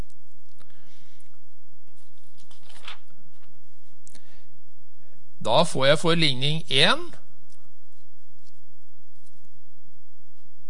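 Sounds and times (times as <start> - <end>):
faint noise: 0.0 - 10.6
paper page being turned over: 1.8 - 3.7
speech: 5.4 - 7.2.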